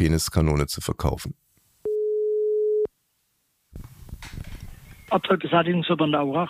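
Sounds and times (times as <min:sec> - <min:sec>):
speech: 0:00.0 - 0:01.5, 0:05.1 - 0:06.4
telephone call tone while dialing out to a landfill in Bavaria: 0:01.9 - 0:02.9.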